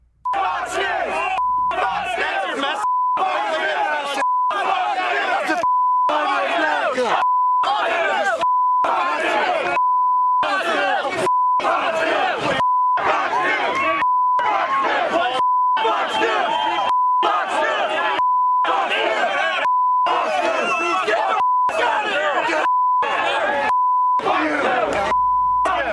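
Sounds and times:
agitated mob shouting and chanting: 0:00.3 - 0:25.9
censor bleep tone: 0:01.4 - 0:02.1, 0:02.8 - 0:03.2, 0:04.2 - 0:04.5, 0:05.6 - 0:06.1, 0:07.2 - 0:07.7, 0:08.4 - 0:08.9, 0:09.8 - 0:10.5, 0:11.3 - 0:11.6, 0:12.6 - 0:13.0, 0:14.0 - 0:14.4, 0:15.4 - 0:15.8, 0:16.8 - 0:17.3, 0:18.2 - 0:18.7, 0:19.6 - 0:20.1, 0:21.4 - 0:21.8, 0:22.6 - 0:23.1, 0:23.7 - 0:24.2, 0:25.1 - 0:25.8.

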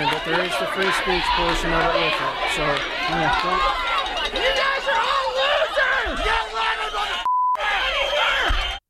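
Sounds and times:
large crowd of protesters shouting and yelling: 0:00.0 - 0:08.8
speech: 0:00.3 - 0:05.0
short bleep tone: 0:07.2 - 0:07.6.

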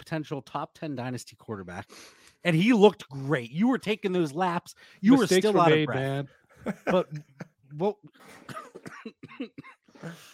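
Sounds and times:
speech: 0:00.1 - 0:10.3
laughter: 0:05.2 - 0:07.6
harsh coughing: 0:08.2 - 0:10.3.

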